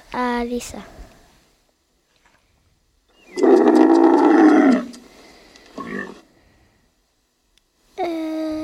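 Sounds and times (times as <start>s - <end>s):
speech: 0.4s - 1.0s
camel deep gurgling bellow: 3.4s - 5.0s, 5.8s - 6.2s.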